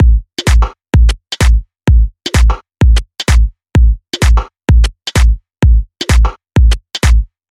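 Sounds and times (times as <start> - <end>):
tech house kick drum loop: 0.0 - 7.5.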